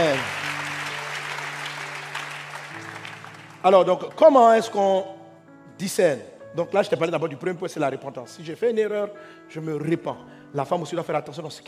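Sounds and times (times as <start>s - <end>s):
church congregation applauding during a service: 0.0s - 4.8s
speech: 3.6s - 5.2s, 5.8s - 11.6s.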